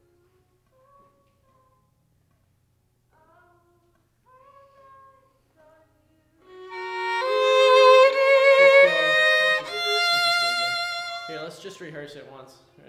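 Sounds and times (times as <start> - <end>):
violin: 6.4 - 12.2.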